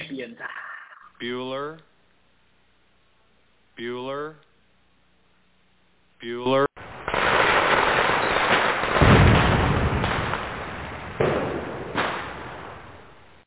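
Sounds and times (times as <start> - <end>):
speech: 0.2 - 1.9, 3.8 - 4.4, 6.2 - 6.7
fireworks bursting in a dense crackle: 6.8 - 13.4.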